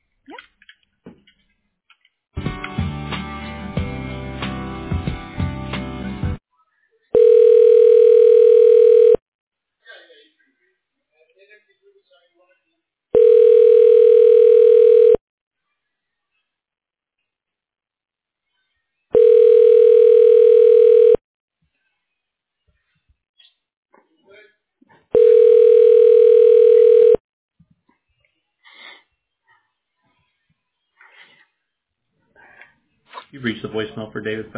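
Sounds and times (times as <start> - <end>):
telephone line ringing tone during a call transfer: 7.2 - 9.2, 13.2 - 15.2, 19.1 - 21.2, 25.2 - 27.2
speech: 33.7 - 34.5.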